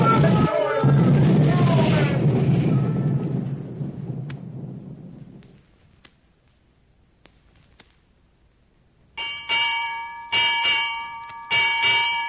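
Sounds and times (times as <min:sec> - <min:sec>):
heavy roaring rumble: 0:00.0 - 0:05.4
ship's bell striking six bells: 0:09.2 - 0:12.2.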